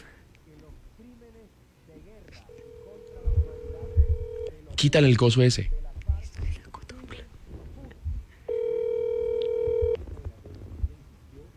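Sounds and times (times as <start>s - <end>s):
steady electronic phone call tone: 2.5s - 4.6s, 8.5s - 10.0s
speech: 4.8s - 5.8s.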